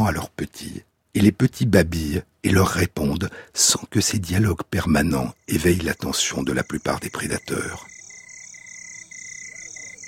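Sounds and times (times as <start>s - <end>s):
speech: 0.1s - 8.0s
dense chorus of frogs with shrill pulsing trill: 5.4s - 10.0s.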